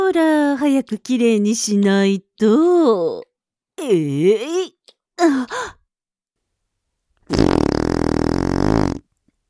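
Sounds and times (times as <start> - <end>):
speech: 0.2 - 5.8
long loud buzzing fart: 7.3 - 9.1.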